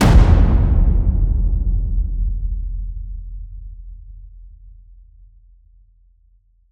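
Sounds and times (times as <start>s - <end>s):
epic cinematic drum hits: 0.0s - 3.5s.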